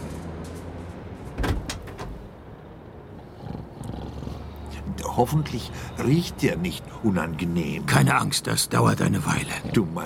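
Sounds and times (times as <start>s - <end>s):
delivery van door latch clack: 1.4s - 2.2s
speech: 5.0s - 10.0s.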